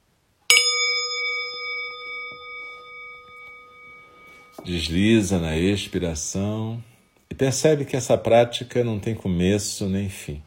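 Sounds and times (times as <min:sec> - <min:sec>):
meditation bell struck and ringing: 0:00.5 - 0:07.8
speech: 0:04.6 - 0:10.4.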